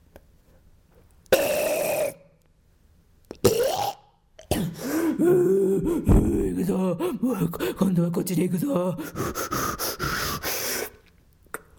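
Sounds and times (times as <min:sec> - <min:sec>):
loud burps with wavering pitch: 0:01.3 - 0:02.3, 0:03.3 - 0:04.6
speech: 0:05.2 - 0:09.6.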